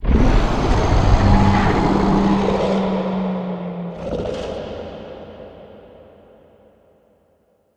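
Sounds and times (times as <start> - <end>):
distant abstract monster scream: 0.0 - 4.0.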